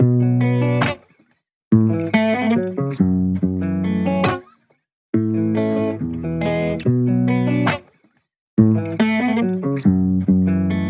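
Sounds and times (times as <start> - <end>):
guitar playing in A major for hip hop rap: 0.0 - 1.0, 1.7 - 4.5, 5.2 - 7.9, 8.6 - 10.8.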